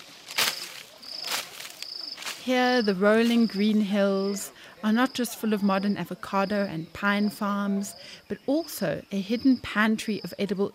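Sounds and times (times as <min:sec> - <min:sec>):
leafy branch swishing through plants to catch grasshoppers: 0:00.0 - 0:03.6
speech: 0:02.4 - 0:10.7.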